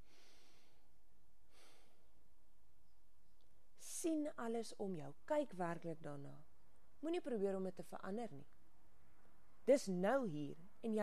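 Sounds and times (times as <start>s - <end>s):
deep breath in and out: 0.0s - 2.2s
speech: 4.0s - 8.5s, 9.6s - 11.0s.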